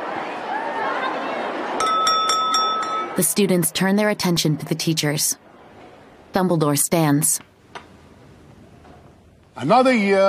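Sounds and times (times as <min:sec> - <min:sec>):
low murmur of chatter from students in a great hall: 0:00.0 - 0:06.9
spoon tapping on a drinking glass at a head table: 0:01.8 - 0:03.2
speech: 0:03.2 - 0:05.4, 0:06.4 - 0:07.5, 0:09.6 - 0:10.2.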